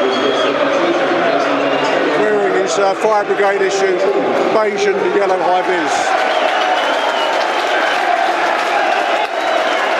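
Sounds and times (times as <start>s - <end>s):
stadium crowd cheering: 0.0s - 9.9s
speech: 2.8s - 6.2s
stadium crowd applause: 4.4s - 9.9s.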